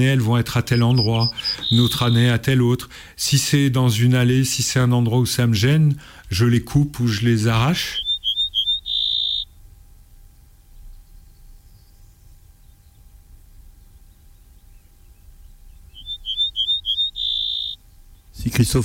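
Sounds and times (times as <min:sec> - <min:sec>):
speech: 0:00.0 - 0:08.0, 0:18.6 - 0:18.8
Ortolan Bunting song: 0:00.0 - 0:09.5, 0:15.6 - 0:18.8.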